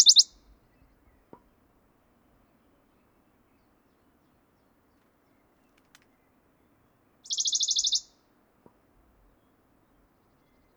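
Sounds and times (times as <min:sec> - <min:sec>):
Western Bonelli's warbler song: 0:00.0 - 0:00.3, 0:07.3 - 0:08.0.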